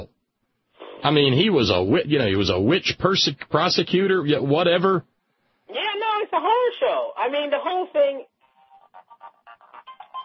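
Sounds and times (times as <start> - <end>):
speech: 1.0 - 5.1, 5.7 - 8.3
phone ringtone bouncy electronic melody: 8.5 - 10.2.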